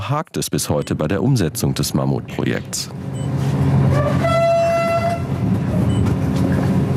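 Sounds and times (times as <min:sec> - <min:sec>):
speech: 0:00.1 - 0:04.3
passenger train rumbling along the rails: 0:02.9 - 0:06.9.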